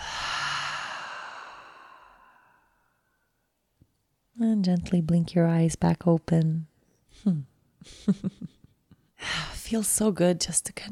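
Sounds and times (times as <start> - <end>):
long exhale through an open mouth during a guided breathing exercise: 0.0 - 2.6
speech: 4.4 - 8.6, 9.2 - 10.8.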